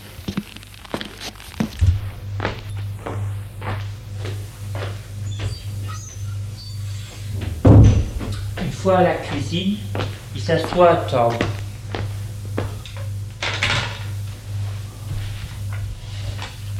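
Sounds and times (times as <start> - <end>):
soft footsteps in slippers going down to a kitchen: 0.0 - 5.6, 8.1 - 12.9, 14.3 - 16.7
low hum: 1.6 - 16.7
loud knock: 7.4 - 8.6
speech: 8.8 - 11.6.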